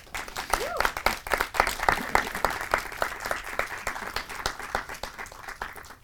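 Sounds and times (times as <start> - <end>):
room full of people applauding: 0.0 - 6.0.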